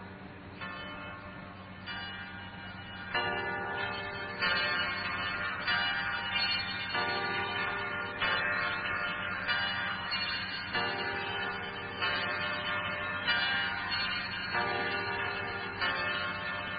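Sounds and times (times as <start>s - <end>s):
church bells pealing: 0.0s - 16.7s.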